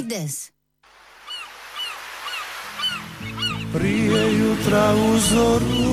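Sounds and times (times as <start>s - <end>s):
speech: 0.1s - 0.6s, 3.2s - 5.9s
steady wash of surf-like noise: 0.9s - 5.9s
seagulls calling by the sea: 1.2s - 5.9s.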